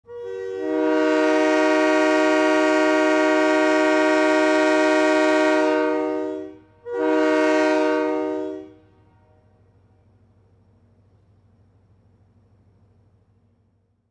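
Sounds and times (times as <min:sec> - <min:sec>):
train horn: 0:00.0 - 0:09.6.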